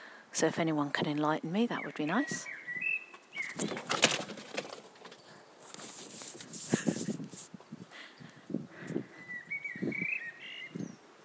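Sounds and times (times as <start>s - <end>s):
speech: 0.4s - 2.6s, 3.6s - 4.1s
bird chirping: 1.6s - 5.6s, 8.0s - 11.2s
quiet shuffling: 3.1s - 9.0s
cat leaping over a fence: 3.4s - 7.5s.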